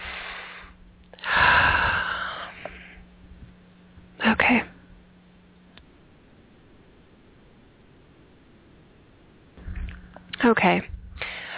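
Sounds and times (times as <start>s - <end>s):
deep breath during a guided breathing exercise: 0.0s - 3.1s, 11.1s - 11.5s
speech: 10.5s - 11.0s.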